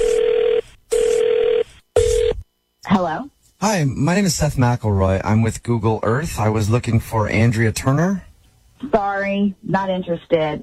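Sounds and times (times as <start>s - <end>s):
telephone ringing on the line: 0.0s - 2.4s
speech: 3.0s - 10.6s.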